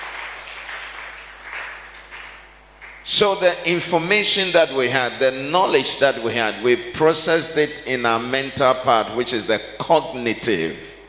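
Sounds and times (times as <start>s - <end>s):
crowd applauding during a sermon: 0.0s - 3.1s
speech: 3.1s - 10.9s.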